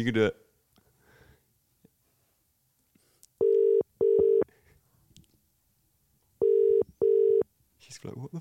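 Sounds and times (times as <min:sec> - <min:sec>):
speech: 0:00.0 - 0:00.4, 0:08.0 - 0:08.3
unanswered outgoing call phone ringback tone: 0:03.4 - 0:04.5, 0:06.4 - 0:07.4.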